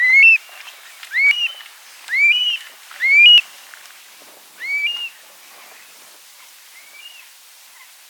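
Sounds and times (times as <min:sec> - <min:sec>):
Eurasian stone-curlew giving loud rising whistled notes: 0:00.0 - 0:00.4, 0:01.1 - 0:03.4, 0:04.6 - 0:05.2.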